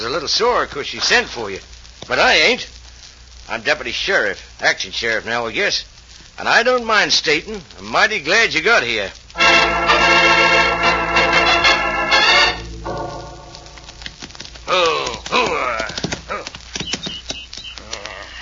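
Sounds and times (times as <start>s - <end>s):
speech: 0.1s - 2.8s, 3.5s - 9.2s
sustained tonal sound: 9.4s - 14.6s
horse hooves galloping: 13.0s - 18.2s
brief voice-like cries: 14.7s - 18.4s.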